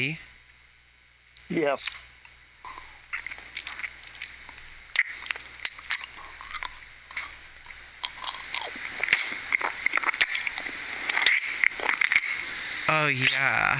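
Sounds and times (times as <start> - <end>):
speech: 0.0 - 0.3, 1.5 - 2.1, 13.1 - 13.7
wet sucking and smacking: 2.7 - 13.4.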